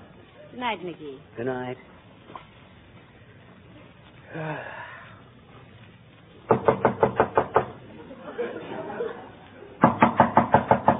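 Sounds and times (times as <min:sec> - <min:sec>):
speech: 0:00.6 - 0:02.4, 0:04.3 - 0:04.8
rapid knocking on a door: 0:06.5 - 0:07.7, 0:09.8 - 0:10.9
laughter: 0:07.8 - 0:09.8.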